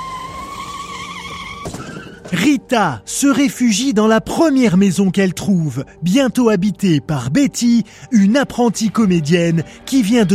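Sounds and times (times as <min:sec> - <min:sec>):
car tires squealing while skidding into an accident: 0:00.0 - 0:02.7
speech: 0:01.6 - 0:10.3.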